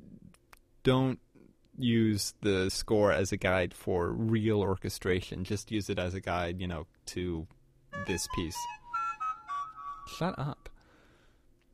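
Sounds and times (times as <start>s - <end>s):
speech: 0.8s - 1.2s, 1.8s - 8.8s, 10.1s - 10.6s
mobile phone ringing with a short electronic melody: 8.0s - 10.2s.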